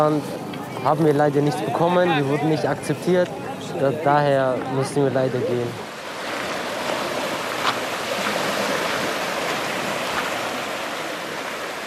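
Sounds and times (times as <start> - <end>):
speech: 0.0 - 5.9
calm sea washing over pebble beach on the English Channel in autumn: 5.8 - 11.8.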